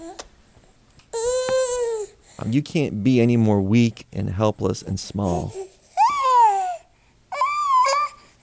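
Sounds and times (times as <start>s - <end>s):
baby crying and babbling: 0.0s - 0.2s, 1.1s - 2.2s, 5.2s - 8.3s
speech: 2.4s - 5.6s.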